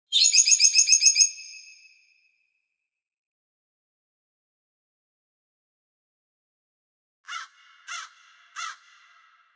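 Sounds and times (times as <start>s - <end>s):
lark singing: 0.1s - 1.8s
crow cawing: 7.3s - 9.5s.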